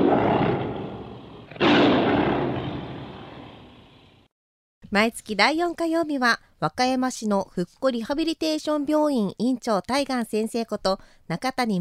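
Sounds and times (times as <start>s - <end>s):
tiger roar sound effect: 0.0s - 4.1s
speech: 4.9s - 11.8s.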